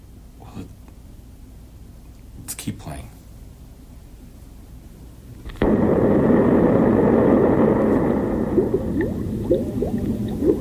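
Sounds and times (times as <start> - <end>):
speech: 2.7 - 3.2
water bubbling: 5.6 - 10.5.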